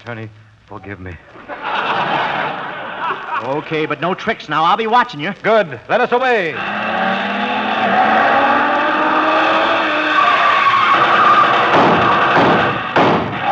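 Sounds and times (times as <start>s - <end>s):
speech: 0.0s - 6.8s
laughter: 1.3s - 4.0s
tires squealing and skidding: 6.5s - 12.4s
speeding car engine roaring: 6.5s - 13.4s
sharp thuds: 11.1s - 13.4s.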